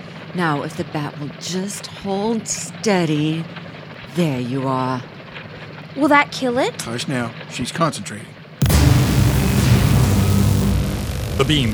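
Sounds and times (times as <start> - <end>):
speech: 0.4 - 3.6, 4.2 - 5.1, 6.0 - 8.3, 11.4 - 11.7
magical explosion as chain shatters: 8.6 - 11.7.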